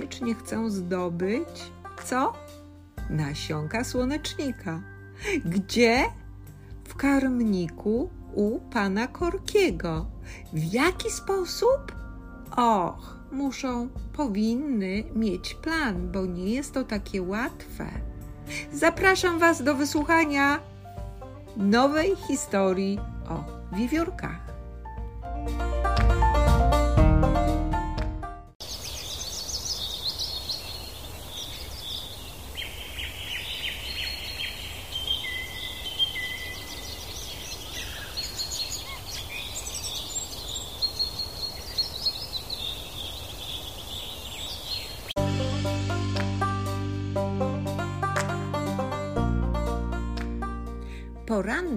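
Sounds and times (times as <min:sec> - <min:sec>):
music: 0:00.0 - 0:28.6, 0:45.2 - 0:51.7
speech: 0:00.2 - 0:06.2, 0:06.9 - 0:20.7, 0:21.6 - 0:24.4, 0:25.4 - 0:25.7
birds chirping and warbling outdoors: 0:28.6 - 0:45.2.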